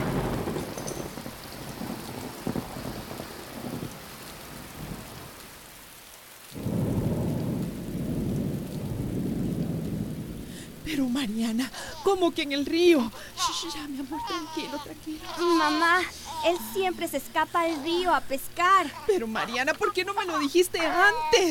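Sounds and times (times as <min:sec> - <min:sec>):
low rumbles of thunder: 0:00.0 - 0:05.4, 0:06.5 - 0:13.1
heavy rain pouring in a thunderstorm: 0:00.0 - 0:21.4
speech: 0:10.9 - 0:21.4.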